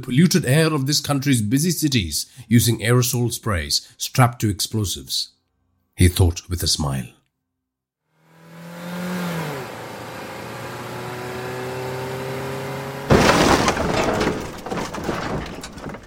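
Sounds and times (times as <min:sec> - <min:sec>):
speech: 0:00.0 - 0:05.4, 0:06.0 - 0:07.2
droning engines of a Land Rover and a Gypsy jeep: 0:08.2 - 0:13.1
Land Rover sideswiping a Gypsy jeep: 0:13.1 - 0:16.0
shattering debris rattling: 0:13.1 - 0:16.0.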